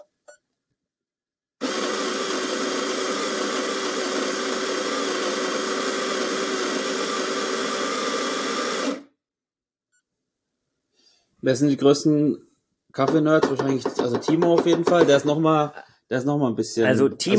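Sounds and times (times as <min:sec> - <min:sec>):
espresso machine pump buzzing while making an espresso: 0:01.6 - 0:09.1
speech: 0:11.4 - 0:17.3.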